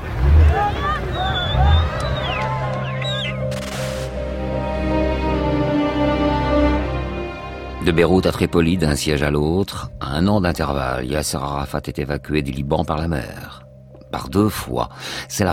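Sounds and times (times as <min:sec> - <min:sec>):
dense crowd shouting and talking at the foot of a ferry: 0:00.0 - 0:03.5
steady deep ferry engine drone: 0:00.0 - 0:08.3
burst of hiss noise: 0:03.6 - 0:04.2
speech: 0:07.9 - 0:15.5.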